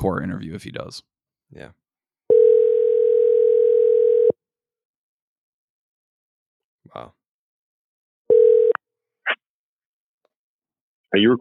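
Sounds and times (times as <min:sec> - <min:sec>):
speech: 0:00.0 - 0:01.8, 0:06.9 - 0:07.2, 0:11.1 - 0:11.3
telephone ringing with a short electronic tone: 0:02.3 - 0:04.4, 0:08.3 - 0:08.8.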